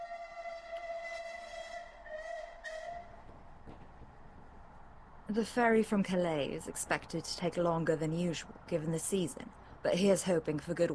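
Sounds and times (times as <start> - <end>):
steam train whistle: 0.0 - 3.3
speech: 5.3 - 10.9.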